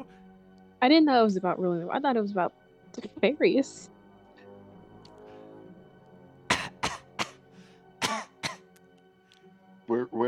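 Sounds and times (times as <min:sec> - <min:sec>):
speech: 0:00.8 - 0:03.9, 0:09.9 - 0:10.2
sharp human coughs voicing were-rats in a tabletop role-playing game: 0:06.5 - 0:07.4, 0:08.0 - 0:08.7.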